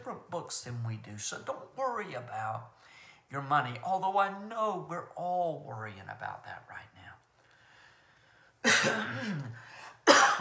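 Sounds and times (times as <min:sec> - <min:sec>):
speech: 0:00.1 - 0:07.0, 0:08.8 - 0:10.3
wet chesty cough: 0:08.6 - 0:10.3.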